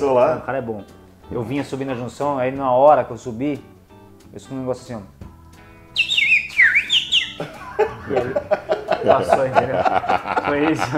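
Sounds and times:
speech: 0.0s - 3.7s, 4.3s - 5.2s, 7.4s - 10.9s
bird chirping: 5.9s - 8.2s
laughter: 7.4s - 10.9s.

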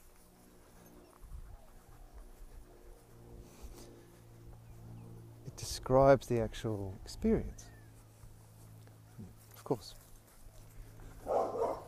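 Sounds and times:
low hum: 0.0s - 11.8s
speech: 5.6s - 7.7s, 9.7s - 10.0s
big dog barking: 11.1s - 11.8s.

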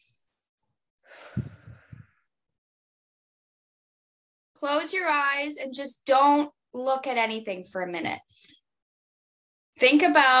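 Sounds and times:
deep breath in and out during a calming exercise: 1.0s - 2.3s
speech: 4.6s - 8.6s, 9.8s - 10.3s.

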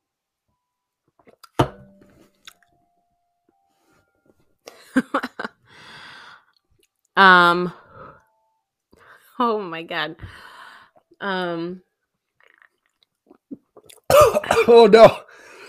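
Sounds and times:
speech: 7.2s - 7.8s, 9.4s - 10.5s, 11.2s - 11.9s, 14.3s - 15.3s
person choking and coughing after swallowing spicy food wrong: 13.6s - 15.2s.

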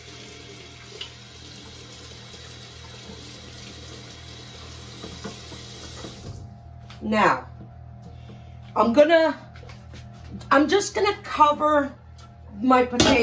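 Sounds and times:
water running from a kitchen tap: 0.0s - 6.5s
speech: 7.0s - 7.4s, 8.8s - 9.4s, 10.5s - 12.0s, 12.6s - 13.2s.

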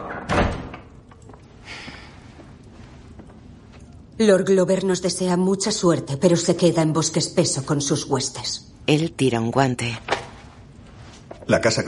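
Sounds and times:
door shutting with a solid thud: 0.0s - 0.9s
soft scraping rustle: 2.2s - 3.8s, 10.2s - 11.5s
speech: 4.2s - 10.1s, 11.5s - 11.8s.

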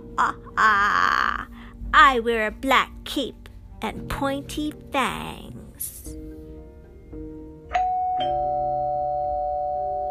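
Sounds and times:
speech: 0.2s - 1.2s, 1.9s - 6.2s
doorbell ding-dong chime on Halloween night: 7.7s - 10.0s.

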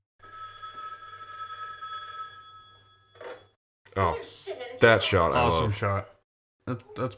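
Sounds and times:
telephone ringing with a bright electronic trill: 0.2s - 3.6s
speech: 4.0s - 6.1s, 6.7s - 7.1s.

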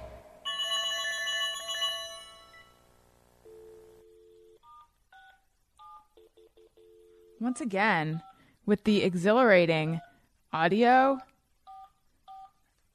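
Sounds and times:
bright ringing electronic tone: 0.0s - 2.8s
speech: 7.4s - 11.3s.

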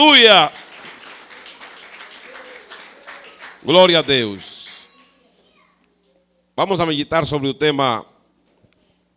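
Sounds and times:
speech: 0.0s - 0.6s, 3.6s - 4.5s, 6.6s - 8.1s
audience clapping hands: 0.0s - 4.9s.

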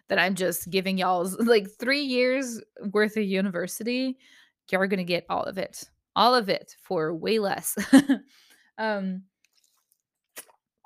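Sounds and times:
speech: 0.1s - 9.3s
faint wet mouth clicks: 9.4s - 10.8s
sip of water from a glass: 9.4s - 10.8s.

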